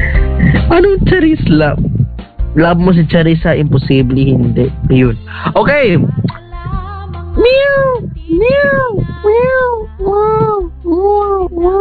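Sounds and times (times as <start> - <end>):
speech: 0.7 - 1.9, 2.6 - 6.4, 7.4 - 11.7
cats yowling while fighting: 7.5 - 9.7.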